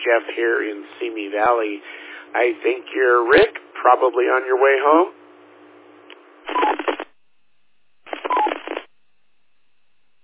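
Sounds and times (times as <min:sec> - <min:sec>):
faint hiss of a band-limited radio channel: 0:00.0 - 0:07.2, 0:08.0 - 0:10.1
speech: 0:00.1 - 0:05.2, 0:06.5 - 0:06.8
rapid electronic beeps over a radio channel: 0:06.5 - 0:07.0, 0:08.1 - 0:08.8.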